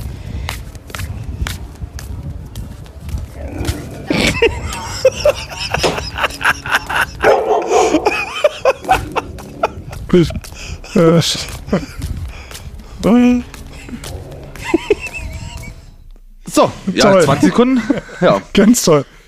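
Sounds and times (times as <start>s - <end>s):
dogs barking and yipping: 3.4s - 10.0s
laughter: 3.6s - 12.3s, 13.8s - 15.9s, 16.8s - 18.8s
speech: 10.1s - 12.0s, 13.0s - 13.5s, 17.0s - 19.2s.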